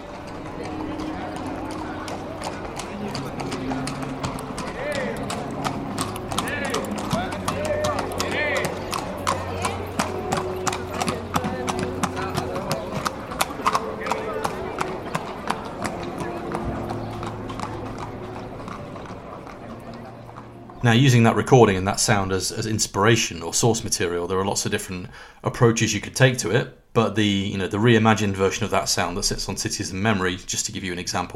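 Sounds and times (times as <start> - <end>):
horses' hooves clip-clopping in a city centre street in Seville: 0.0 - 21.9
indistinct voices: 0.0 - 23.8
speech: 20.9 - 31.3.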